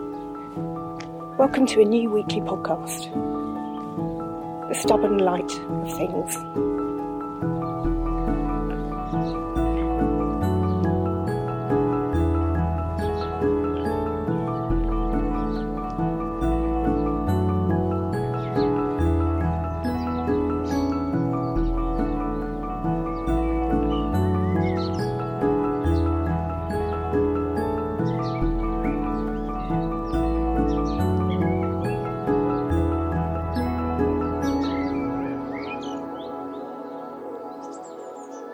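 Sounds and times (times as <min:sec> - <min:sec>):
dawn chorus birds chirping and singing: 0:00.0 - 0:38.5
soft music with shifting low notes: 0:00.0 - 0:38.5
speech: 0:01.4 - 0:03.4, 0:04.7 - 0:06.7.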